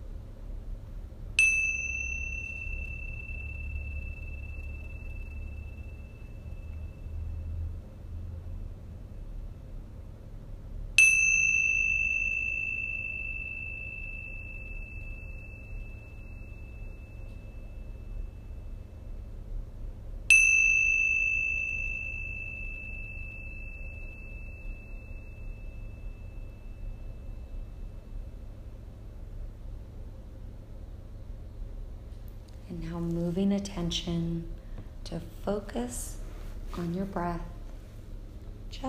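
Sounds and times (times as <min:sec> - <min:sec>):
soft low hum: 0:00.0 - 0:38.8
meditation bell strikes: 0:01.4 - 0:08.0, 0:11.0 - 0:19.5, 0:20.3 - 0:28.7
speech: 0:32.8 - 0:36.2, 0:36.8 - 0:37.5.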